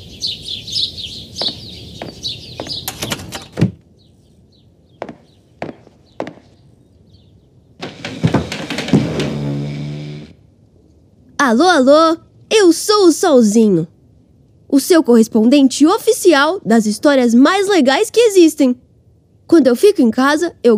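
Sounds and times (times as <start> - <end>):
birds chirping outside: 0.0 - 11.2
sharp knocks: 1.4 - 3.8, 5.0 - 6.6, 7.8 - 10.3
door pushed shut with a scraping creak: 7.8 - 10.4
speech: 11.5 - 13.9, 14.7 - 18.8, 19.5 - 20.7.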